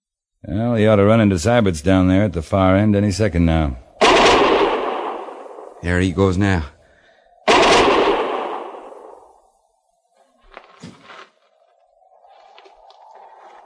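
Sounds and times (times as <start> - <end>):
speech: 0.4 - 3.8, 5.8 - 6.8
gunfire from men shooting down from a rim: 4.0 - 5.8, 7.4 - 9.4.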